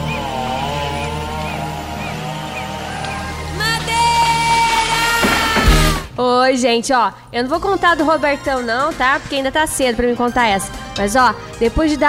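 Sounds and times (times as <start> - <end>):
chainsaw engine droning and revving: 0.0 - 6.1
speech: 6.5 - 12.0.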